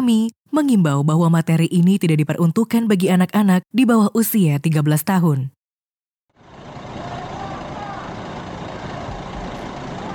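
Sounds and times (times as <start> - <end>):
speech: 0.0 - 5.6
bus engine rumbling pulling into a bus terminal: 6.3 - 10.1.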